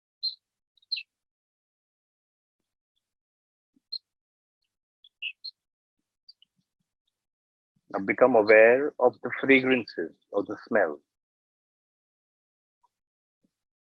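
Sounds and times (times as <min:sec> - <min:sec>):
birds chirping in short high-pitched bursts: 0:00.2 - 0:01.2, 0:03.8 - 0:04.1, 0:05.0 - 0:05.6, 0:08.0 - 0:11.0
speech: 0:07.9 - 0:11.1.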